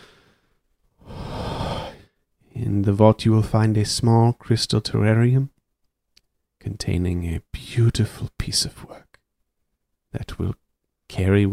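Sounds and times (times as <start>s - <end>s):
woman taking a big breath in and out: 0.0s - 2.3s
speech: 2.8s - 5.6s, 6.6s - 9.1s, 10.1s - 11.5s.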